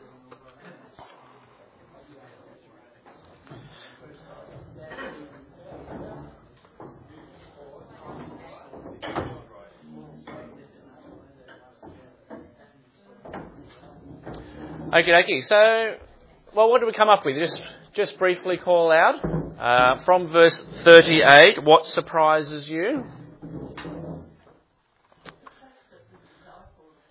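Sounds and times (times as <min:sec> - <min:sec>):
murmur of indistinct chatter from many people: 0:00.0 - 0:23.6
chairs being swung back around by a group of people: 0:03.5 - 0:12.6, 0:13.2 - 0:24.7
speech: 0:14.9 - 0:16.0, 0:16.6 - 0:23.2.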